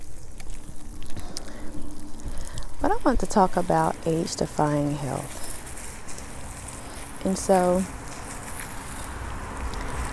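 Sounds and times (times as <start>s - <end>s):
low rumbling undertone: 0.0s - 10.1s
water spraying from a garden sprayer for watering: 2.2s - 10.1s
speech: 2.9s - 5.4s, 7.2s - 8.0s.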